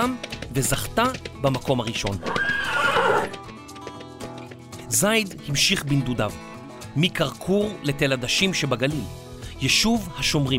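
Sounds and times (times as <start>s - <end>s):
speech: 0.0s - 2.6s, 4.9s - 10.5s
horse hooves clip-clopping: 0.0s - 5.8s
horse neighing: 2.2s - 3.4s.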